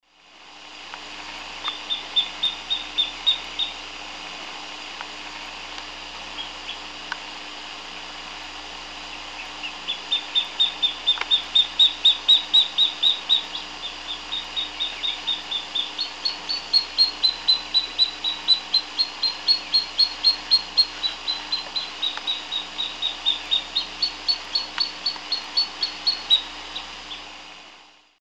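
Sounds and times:
Gampsonyx swainsonii song in Eastern Lowlands of South America: 1.6 - 3.8, 9.4 - 27.3.

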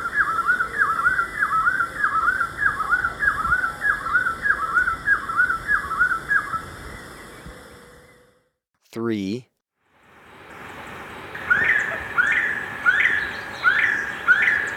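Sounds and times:
Rufous-breasted wood-quail song with whistled phrases in Ecuador: 0.0 - 8.2, 11.4 - 14.7
steady high hum: 0.0 - 14.7
speech: 9.1 - 9.5.

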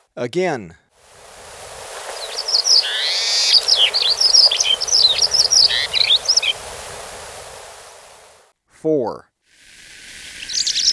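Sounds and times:
speech: 0.2 - 0.8, 8.8 - 9.3
paramo pipit song: 1.8 - 8.3, 10.4 - 10.9.

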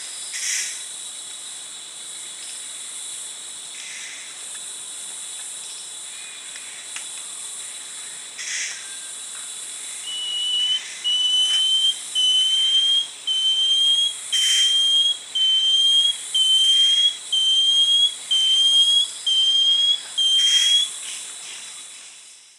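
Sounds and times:
banded antbird Dichrozona cincta whistled song in South American eastern lowlands: 9.9 - 21.0.

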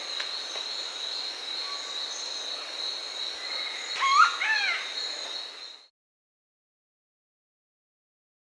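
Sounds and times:
Scaly-breasted woodpecker call in Bolivia: 3.4 - 5.2.

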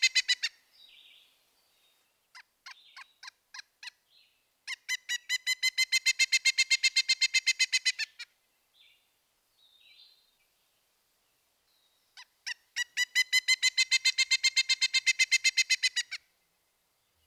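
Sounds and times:
Pileated Woodpecker ringing ki calls: 0.0 - 1.2, 2.3 - 8.4, 12.1 - 16.3.

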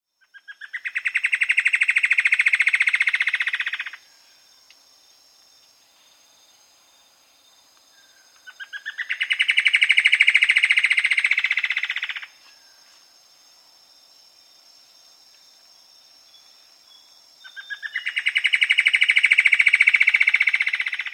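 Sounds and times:
Plumbeous Antbird calling: 0.2 - 4.0, 7.9 - 12.7, 17.0 - 21.1.

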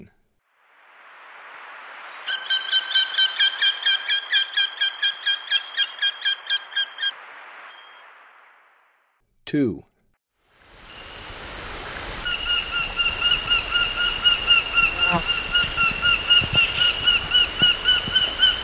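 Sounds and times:
Orange-breasted falcon calling in Ecuador: 2.3 - 7.1, 12.2 - 18.6.

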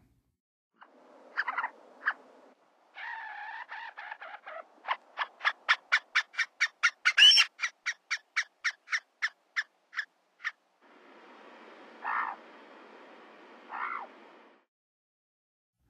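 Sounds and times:
White-tailed Ptarmigan calling in Western USA: 1.3 - 2.3, 2.9 - 10.6, 11.8 - 12.8, 13.6 - 14.2.

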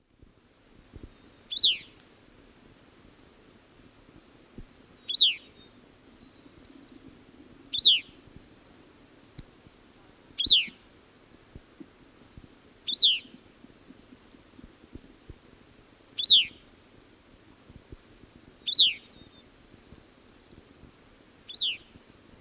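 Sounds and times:
Catharus minimus calling in the Eastern Lowlands of South America: 5.1 - 5.4, 7.8 - 8.1, 10.4 - 10.8, 12.9 - 13.3, 16.2 - 16.5, 18.7 - 19.0.

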